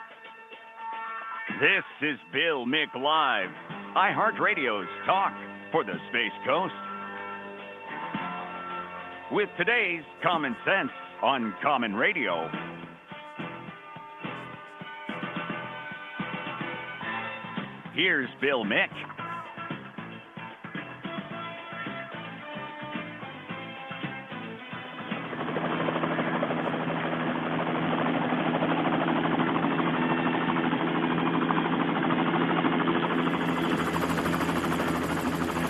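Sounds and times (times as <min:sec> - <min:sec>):
short burst of music: 0:00.0 - 0:35.6
speech: 0:01.5 - 0:06.8, 0:09.3 - 0:12.7, 0:18.0 - 0:19.2
swarm of black helicopters passing overhead: 0:01.5 - 0:35.6.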